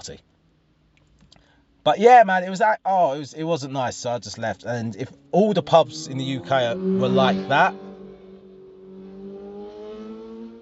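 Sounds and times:
speech: 0.0s - 0.3s, 1.8s - 7.9s
motorbike engine droning past: 5.1s - 10.6s.

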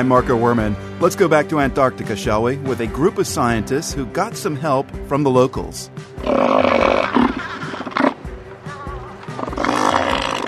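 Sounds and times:
speech: 0.0s - 6.9s
elephant seal roaring in deep rasping throaty bellows: 6.2s - 8.2s, 8.8s - 10.4s.

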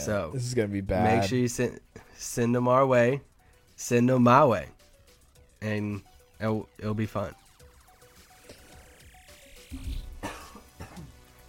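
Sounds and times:
speech: 0.0s - 4.8s, 5.6s - 7.4s, 9.7s - 10.0s
person coughing in short harsh bursts: 9.8s - 11.2s.

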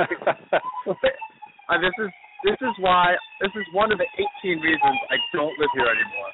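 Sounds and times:
laughter: 0.0s - 3.0s
ambulance siren wailing: 0.0s - 6.3s
speech: 0.0s - 6.3s.

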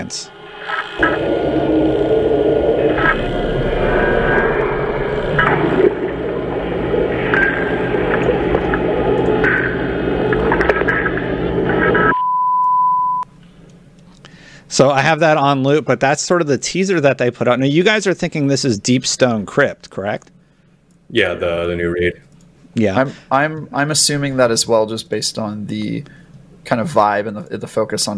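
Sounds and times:
speech: 0.0s - 0.4s, 1.0s - 1.8s, 14.8s - 20.4s, 21.1s - 22.2s, 22.8s - 28.1s
rumbling: 0.0s - 12.1s
static hiss and crackle: 0.0s - 12.1s
steady electronic beep tone: 0.3s - 13.3s.

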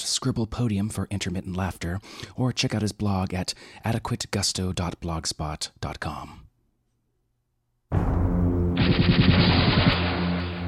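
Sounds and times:
speech: 0.2s - 6.4s
particle cannon shot energy blast: 7.9s - 10.6s
electronic whine: 8.5s - 10.6s.

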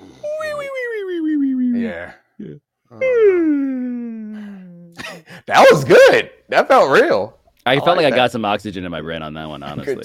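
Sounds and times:
person fake yawning with a voiced groan: 0.0s - 5.2s
speech: 5.5s - 10.0s.

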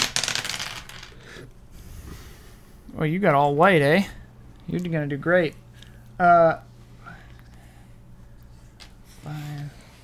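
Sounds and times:
dice rolling across a hard tabletop during a game: 0.0s - 1.3s
speech: 3.0s - 5.6s, 6.2s - 6.7s, 9.2s - 9.8s.

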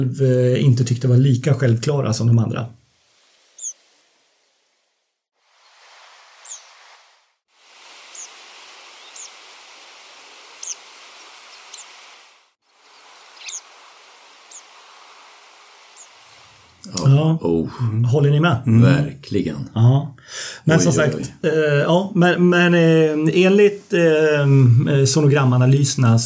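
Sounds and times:
speech: 0.0s - 2.8s, 17.4s - 26.2s
steady hiss of noise: 0.0s - 26.2s
Siberian pipit calling short thin high-pitched notes: 3.6s - 3.8s, 6.4s - 6.7s, 8.1s - 9.4s, 10.5s - 10.8s, 13.0s - 13.8s, 15.9s - 16.4s.

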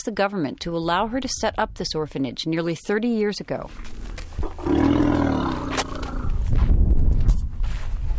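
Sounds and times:
speech: 0.0s - 4.0s
young elephants rumbling and scuffling: 3.6s - 8.1s
young elephants bellowing: 4.5s - 6.4s.

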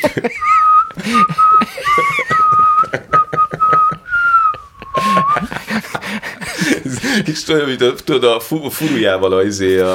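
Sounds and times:
speech: 0.0s - 1.6s, 7.4s - 9.9s
laughter: 0.0s - 7.4s
person whistling a song melody: 0.3s - 5.6s
speech sounds: 7.3s - 9.9s.

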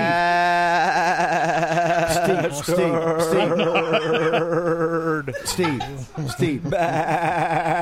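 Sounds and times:
man imitating a sheep bleating: 0.0s - 3.8s, 6.6s - 7.8s
laughter: 0.0s - 7.8s
speech: 2.3s - 7.8s.

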